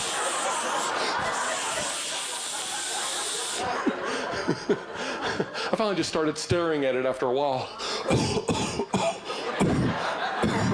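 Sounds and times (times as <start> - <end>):
laughter: 0.0 - 6.2, 7.4 - 10.7
aerosol deodorant can spraying onto the armpits of shirts: 1.5 - 3.7
speech: 4.5 - 8.7.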